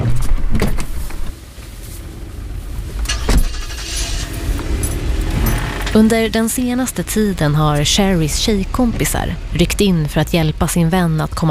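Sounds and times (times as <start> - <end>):
car engine rumbling low: 0.8 - 11.4
car braking to a stop outside a residential building entrance: 1.3 - 9.2
speech: 6.0 - 11.4.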